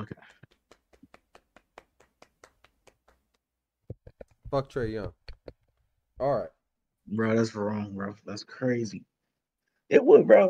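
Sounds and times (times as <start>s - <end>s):
person clapping hands: 0.0s - 4.4s
speech: 4.5s - 5.2s, 6.2s - 6.5s, 7.1s - 9.1s, 9.9s - 10.4s.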